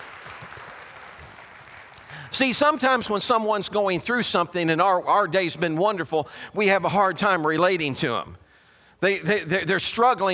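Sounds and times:
crowd applauding in praise of a man: 0.0 - 3.0
speech: 2.3 - 8.4, 9.0 - 10.3.

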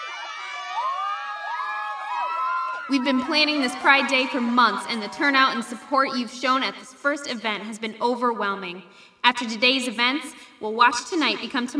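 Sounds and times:
high whoops from a crowd: 0.0 - 3.9
large crowd cheering and shouting joyfully: 0.0 - 6.7
speech: 2.9 - 11.7.

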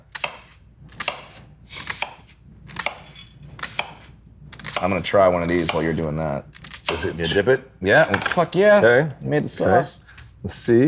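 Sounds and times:
knife chopping an onion on a cutting board: 0.0 - 7.4
speech: 4.8 - 10.8.

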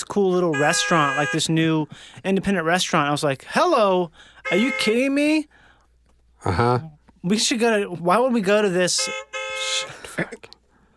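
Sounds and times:
speech: 0.0 - 5.6, 6.4 - 10.6
old-fashioned car horn honk sound effect: 0.4 - 1.8, 4.4 - 5.3, 8.9 - 10.0
short clipped vocal noises: 6.4 - 7.0.

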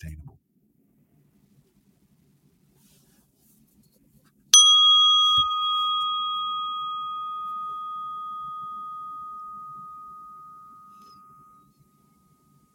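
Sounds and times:
speech: 0.0 - 0.2
bell struck with a bright clear ding: 4.6 - 12.7.

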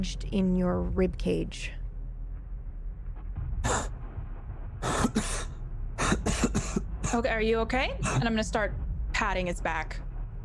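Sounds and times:
speech: 0.0 - 1.8, 7.1 - 10.1
low rumbling background: 0.0 - 10.4
heavy coughing: 4.8 - 7.3, 8.0 - 8.4.

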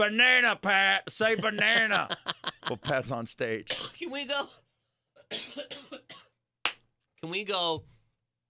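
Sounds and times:
speech: 0.0 - 4.6, 5.3 - 6.1, 7.2 - 7.9
laughter: 1.3 - 3.0
person coughing: 3.7 - 4.0, 5.3 - 6.4.

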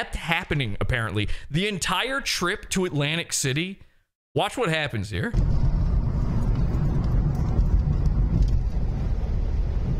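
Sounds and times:
speech: 0.0 - 5.6
car cruising at highway speed behind a van: 5.4 - 9.9.

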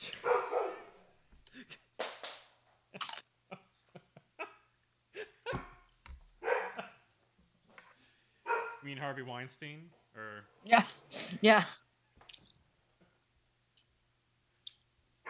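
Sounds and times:
dog barking: 0.2 - 1.0, 6.4 - 7.0, 8.4 - 8.9
speech: 9.0 - 11.8.

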